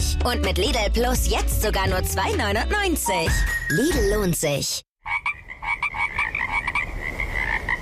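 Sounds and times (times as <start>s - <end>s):
speech: 0.2s - 4.9s
chorus of frogs croaking: 5.0s - 7.8s.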